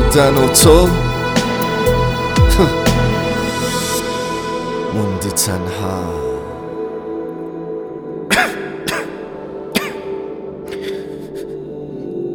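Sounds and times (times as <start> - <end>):
music: 0.0 - 12.3
speech: 0.2 - 1.0, 2.6 - 2.8, 5.0 - 6.3
throat clearing: 8.3 - 10.9
person coughing: 8.3 - 11.0.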